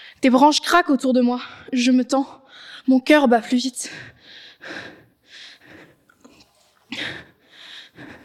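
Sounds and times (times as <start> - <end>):
speech: 0.2 - 5.0
heavy ragged panting breath: 3.8 - 8.2.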